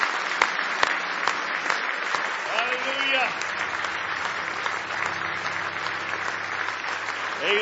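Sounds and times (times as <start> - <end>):
audience applauding in a room: 0.0 - 7.5
low hum: 3.3 - 7.5.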